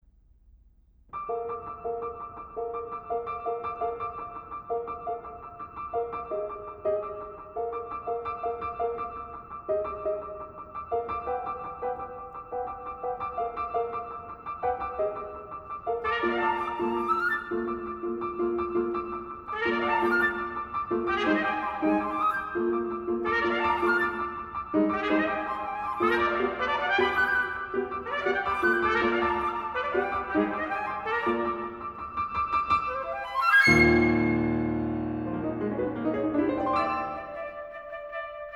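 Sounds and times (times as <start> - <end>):
piano in a trio: 1.1 - 38.5
flute in a trio: 14.7 - 34.9, 36.5 - 38.5
trumpet in a trio: 16.0 - 17.6, 19.5 - 22.5, 23.2 - 32.1.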